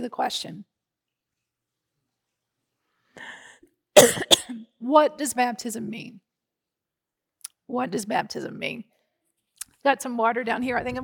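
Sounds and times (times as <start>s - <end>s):
speech: 0.0s - 0.7s, 4.0s - 6.2s, 7.7s - 8.9s, 9.8s - 11.0s
soft voiced throat sound: 4.0s - 4.6s
speaker coughing with a tickle in the throat: 4.0s - 4.6s.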